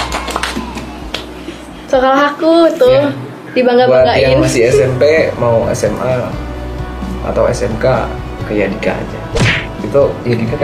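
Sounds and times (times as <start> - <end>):
hand claps: 0.0 - 1.3
speech: 1.9 - 6.4, 7.2 - 10.6.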